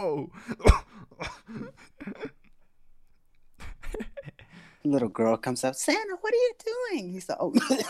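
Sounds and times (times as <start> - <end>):
speech: 0.0 - 0.8, 4.9 - 7.8
person imitating coughing in exaggerated hacking bursts: 0.5 - 2.4.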